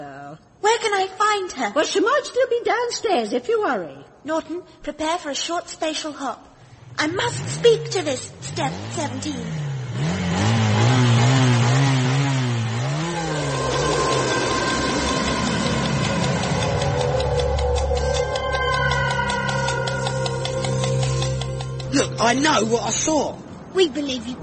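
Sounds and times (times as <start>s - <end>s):
speech: 0.3s - 10.2s, 22.2s - 24.4s
motorbike engine revving: 6.8s - 22.8s.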